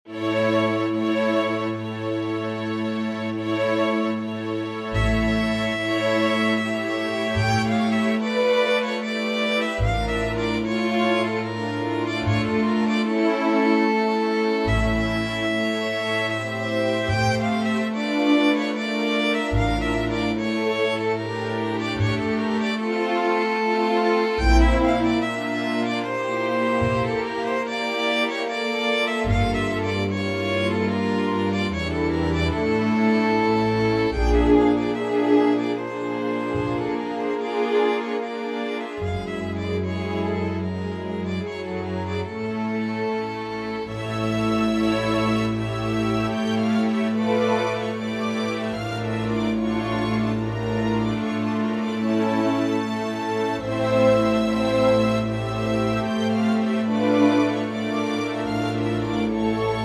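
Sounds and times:
string ensemble playing a folk dance: 0.0s - 59.8s.

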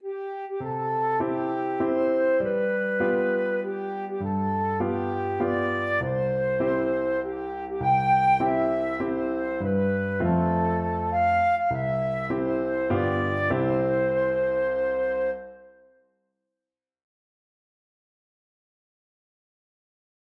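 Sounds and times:
birthday song on flute: 0.0s - 16.0s.

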